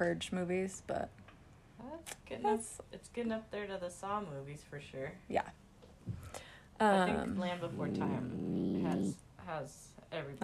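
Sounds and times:
speech: 0.0 - 1.2, 1.8 - 10.4
small female puppy growling: 7.1 - 9.2.

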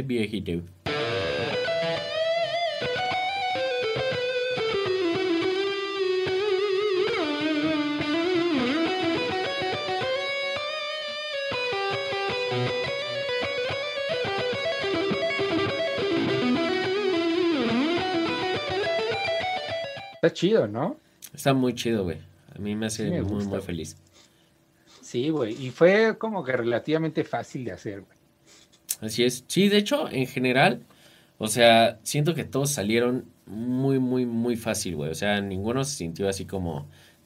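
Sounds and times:
speech: 0.0 - 0.8, 2.8 - 3.2, 20.2 - 24.1, 25.1 - 28.2, 29.0 - 37.0
slightly distorted soloed melodic instrument line with delay and reverb: 0.9 - 20.2.

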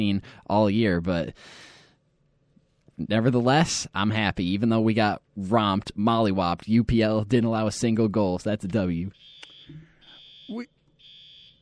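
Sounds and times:
speech: 0.0 - 1.7, 3.0 - 9.9, 10.5 - 10.8
shrill high-pitched fire alarm blaring: 9.2 - 11.5.

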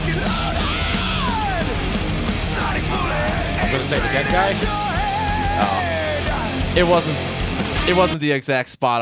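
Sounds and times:
man yelling in the background of a song: 0.0 - 7.0
loud dense recorded song with driving music: 0.0 - 8.2
speech: 3.9 - 4.9, 6.8 - 7.3, 7.9 - 9.0.

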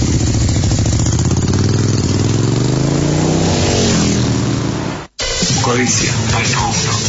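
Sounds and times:
motorcycle engine idling and revving: 0.0 - 5.2
speech: 5.7 - 6.9.

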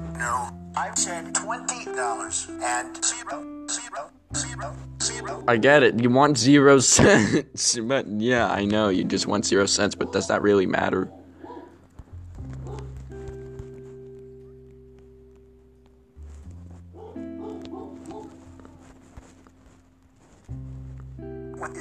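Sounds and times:
speech: 0.2 - 11.2
dog barking: 3.0 - 5.5, 10.0 - 11.8, 12.6 - 13.0, 16.9 - 18.8
laughter: 6.9 - 7.6.

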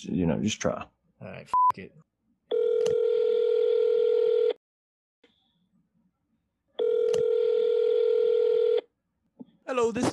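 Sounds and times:
speech: 0.1 - 2.1, 9.7 - 10.1
telephone ringback tone heard through the handset: 2.5 - 4.6, 6.8 - 8.8.

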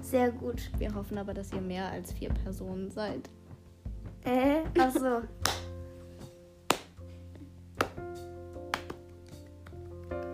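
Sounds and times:
speech: 0.0 - 3.4, 4.2 - 5.6
person clapping hands: 4.9 - 5.8, 6.7 - 7.0, 7.8 - 10.3.

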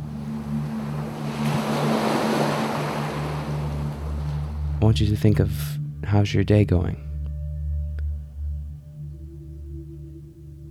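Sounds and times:
ocean waves breaking on a shore: 0.0 - 5.8
steady low hum: 0.0 - 10.6
speech: 4.9 - 7.1.

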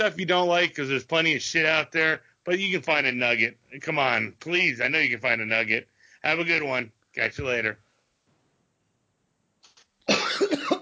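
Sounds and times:
speech: 0.0 - 7.8, 10.3 - 10.8
person coughing: 10.1 - 10.8.

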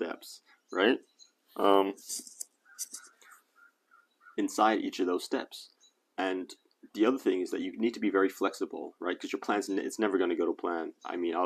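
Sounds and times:
speech: 0.0 - 2.3, 4.4 - 11.4
birds chirping: 0.0 - 11.4
crow cawing: 2.6 - 4.4.

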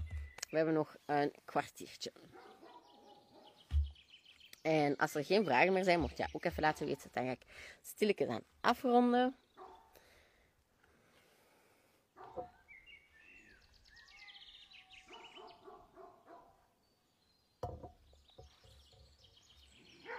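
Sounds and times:
birds chirping: 0.0 - 10.4, 12.2 - 20.1
speech: 0.5 - 2.5, 4.6 - 9.4
dogs barking back and forth outdoors at a distance: 2.2 - 3.7, 9.6 - 10.0, 12.2 - 12.6, 14.1 - 16.8, 20.0 - 20.1.

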